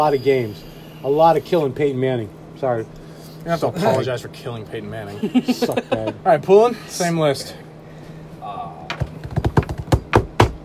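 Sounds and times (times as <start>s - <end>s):
speech: 0.0s - 7.6s
laughter: 5.1s - 6.3s
banging on a table: 8.9s - 10.6s.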